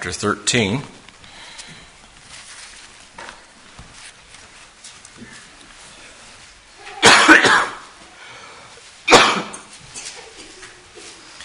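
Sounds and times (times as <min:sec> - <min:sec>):
speech: 0:00.0 - 0:01.0
person coughing: 0:06.9 - 0:07.9, 0:09.1 - 0:10.2.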